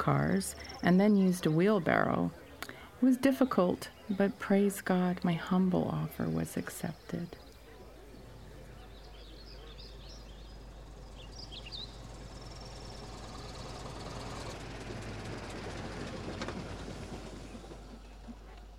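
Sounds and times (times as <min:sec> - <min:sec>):
speech: 0:00.0 - 0:02.4, 0:03.0 - 0:07.4
birds chirping: 0:00.0 - 0:18.7
taxi car pulling up, engine idling with low rumble and mechanical rattle: 0:07.4 - 0:18.7.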